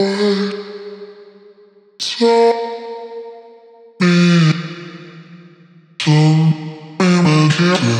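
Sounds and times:
vocal loop in C minor: 0:00.0 - 0:00.7, 0:04.0 - 0:04.8, 0:06.0 - 0:07.9.

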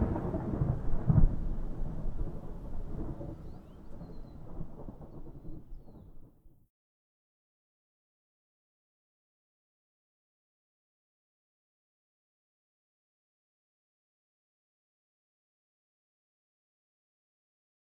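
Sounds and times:
nature ambience: 0:00.2 - 0:06.3.

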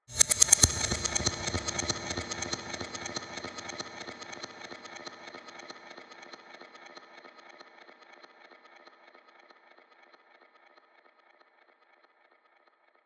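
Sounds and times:
ethnic psytrance music at 142 BPM: 0:00.1 - 0:04.6.

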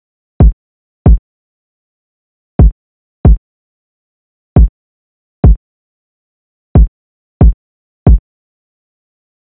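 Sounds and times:
kick drum loop: 0:00.4 - 0:01.2, 0:02.6 - 0:03.4, 0:06.8 - 0:08.2.

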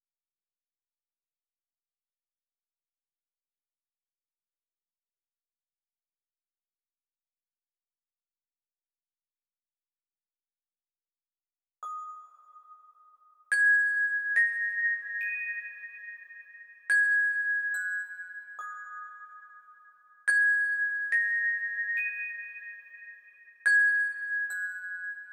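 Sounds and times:
glockenspiel in D sharp minor: 0:11.8 - 0:25.3.

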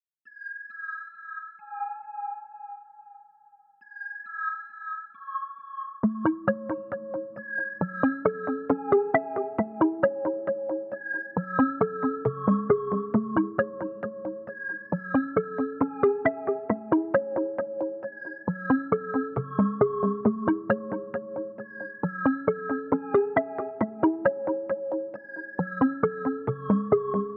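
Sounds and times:
135 BPM C# minor synth: 0:06.0 - 0:27.3.

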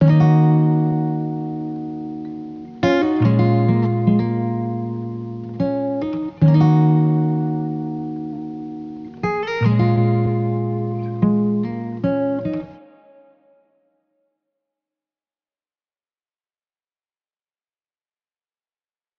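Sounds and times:
wet acoustic guitar in D sharp minor: 0:00.0 - 0:13.8.

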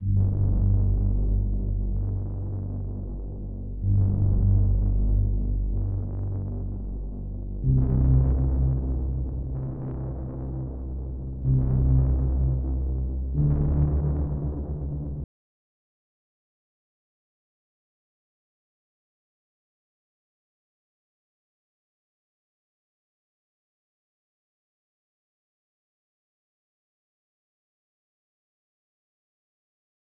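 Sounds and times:
G minor bass melody loop: 0:00.0 - 0:15.2.

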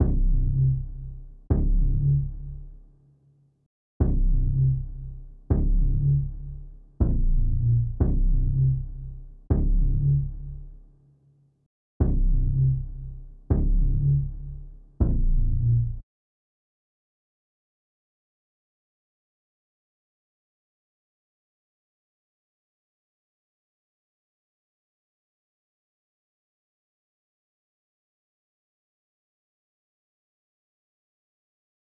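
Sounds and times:
120 BPM F minor bass loop: 0:00.0 - 0:02.8, 0:04.0 - 0:10.8, 0:12.0 - 0:16.0.

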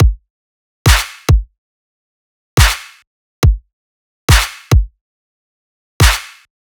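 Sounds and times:
dubstep kick drum loop: 0:00.0 - 0:00.3, 0:00.9 - 0:01.5, 0:02.6 - 0:02.8, 0:03.4 - 0:03.7, 0:04.3 - 0:05.0, 0:06.0 - 0:06.2
dubstep clap loop: 0:00.9 - 0:01.3, 0:02.6 - 0:03.0, 0:04.3 - 0:04.7, 0:06.0 - 0:06.5.

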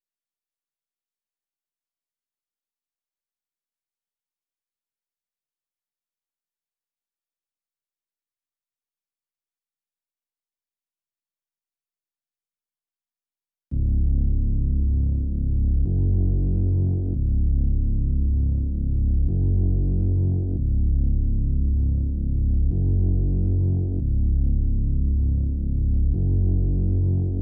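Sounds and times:
140 BPM C# minor bass: 0:13.7 - 0:27.4.

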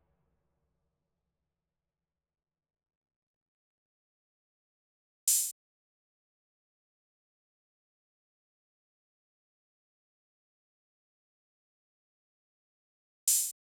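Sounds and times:
drum loop with open hi-hat: 0:05.3 - 0:05.5, 0:13.3 - 0:13.5.

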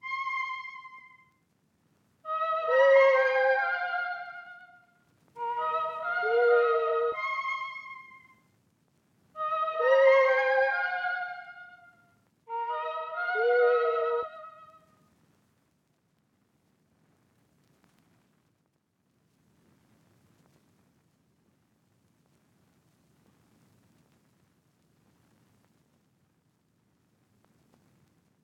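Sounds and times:
flute loop in F minor: 0:00.0 - 0:01.2, 0:02.3 - 0:04.8, 0:05.4 - 0:08.3, 0:09.4 - 0:14.8.

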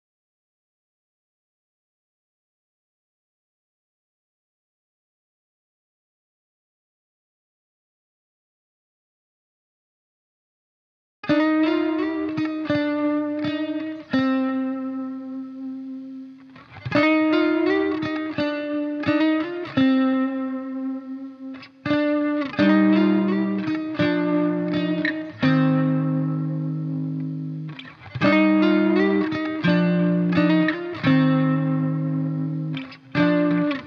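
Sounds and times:
C minor lead guitar loop: 0:11.2 - 0:33.8.

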